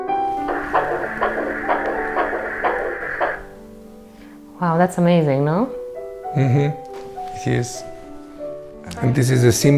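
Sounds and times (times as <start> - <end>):
heartbeat sound from a hugged teddy bear: 0.1 - 3.6
electronic melody from a hugged teddy bear: 0.1 - 3.8
soft hum: 0.1 - 4.3
speech: 4.7 - 6.8, 7.4 - 7.9, 8.9 - 9.7.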